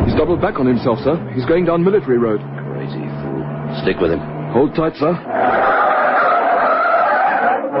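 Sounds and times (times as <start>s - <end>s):
speech: 0.2s - 3.0s, 3.8s - 5.6s
tyres of a speeding taxi squealing as it swerves in a car chase: 5.2s - 7.7s.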